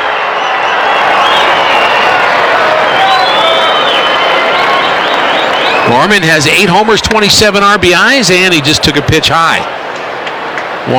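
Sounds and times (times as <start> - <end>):
shrill whistles: 0.0 - 6.1
large baseball stadium crowd cheering: 0.0 - 10.9
speech: 5.9 - 9.8.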